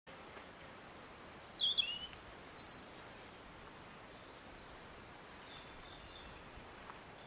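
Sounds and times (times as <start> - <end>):
soft background hiss: 0.1 - 7.2
European robin Erithacus rubecula warbling: 1.0 - 3.2, 4.2 - 7.2.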